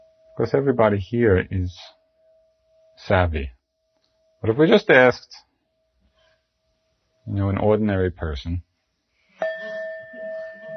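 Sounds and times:
meditation bell struck and ringing: 0.0s - 3.1s, 9.4s - 10.7s
speech: 0.4s - 2.0s, 3.0s - 3.6s, 4.4s - 5.5s, 7.2s - 8.7s.

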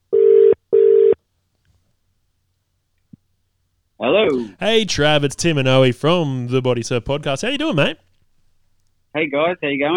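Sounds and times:
phone line double-ring electronic tones: 0.1s - 1.2s
speech: 4.0s - 8.0s, 9.2s - 9.9s.

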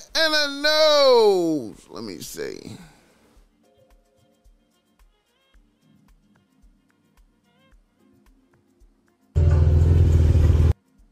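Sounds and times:
speech: 0.1s - 2.9s
luxury vehicle engine roaring in traffic: 9.4s - 10.7s.

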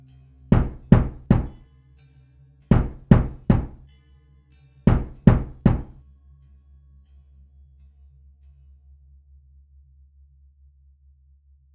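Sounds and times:
loud sharp knocking on a door: 0.5s - 1.6s, 2.7s - 3.8s, 4.9s - 6.0s.

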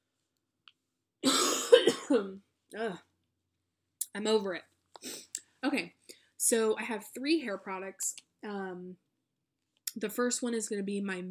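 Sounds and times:
person coughing: 1.2s - 2.4s
speech: 2.1s - 3.1s, 4.2s - 5.1s, 5.7s - 9.0s, 10.0s - 11.2s.

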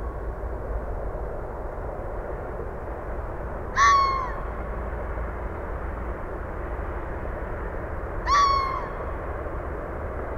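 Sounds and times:
airplanes flying over: 0.0s - 10.3s
red fox giving hoarse descending calls in a marsh: 3.8s - 4.5s, 8.2s - 9.1s.

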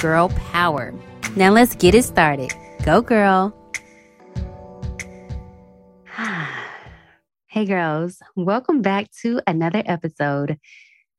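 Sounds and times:
speech: 0.0s - 3.6s, 7.6s - 11.1s
soft musical tones with beats: 1.2s - 7.0s
deep breath and exhale: 6.1s - 7.2s
voiced sigh: 6.1s - 7.2s.

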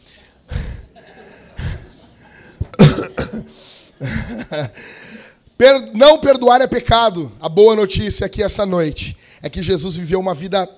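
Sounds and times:
laughter: 0.6s - 2.8s, 3.5s - 4.8s
person coughing: 2.6s - 4.8s
speech: 3.4s - 10.7s.

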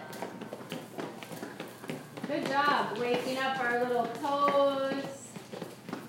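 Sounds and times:
feet stomping on the floor: 0.0s - 6.0s
speech: 2.3s - 5.1s.

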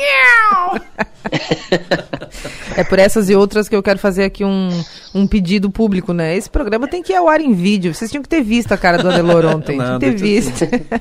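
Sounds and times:
cat meowing: 0.0s - 0.8s
laughter: 0.5s - 3.1s, 8.6s - 10.9s
speech: 1.4s - 2.0s, 2.8s - 10.9s.

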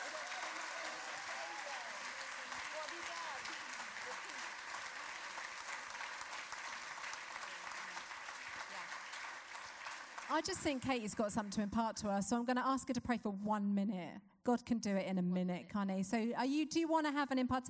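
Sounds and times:
faint voices and cheers: 0.0s - 4.5s
audience applause: 0.0s - 10.8s
speech: 10.3s - 17.6s.

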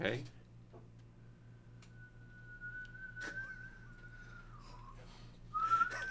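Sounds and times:
low hum: 0.0s - 6.0s
person whistling to blow out birthday candles: 1.5s - 6.0s.

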